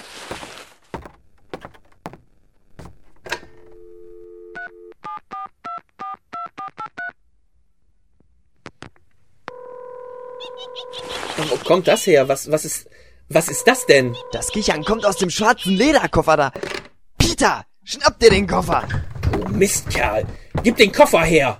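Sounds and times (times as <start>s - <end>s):
ringing tone on the telephone line: 3.6s - 5.5s, 9.5s - 11.1s, 13.3s - 15.3s
telephone dial tone: 3.8s - 5.0s, 9.5s - 10.6s
speech: 11.4s - 16.8s, 17.4s - 21.5s
touch-tone beeps keyed to call a taxi: 13.3s - 15.3s.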